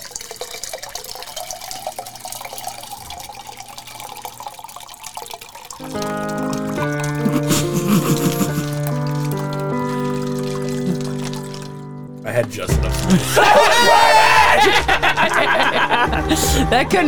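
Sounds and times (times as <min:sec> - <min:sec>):
canned water being poured into a glass: 0:00.0 - 0:17.0
laughter: 0:07.1 - 0:09.0, 0:12.3 - 0:17.0
speech: 0:12.5 - 0:14.0, 0:15.5 - 0:17.0.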